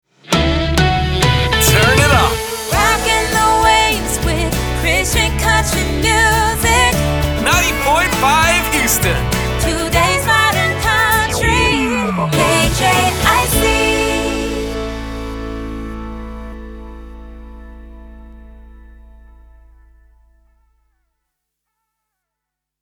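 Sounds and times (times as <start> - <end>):
sung slogan jingle in A Major at 100bpm: 0.4 - 20.5.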